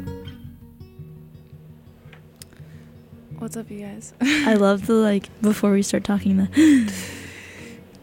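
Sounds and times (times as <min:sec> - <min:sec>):
speech: 0:03.5 - 0:07.3
sharp breathy gasp in a studio: 0:06.5 - 0:07.9.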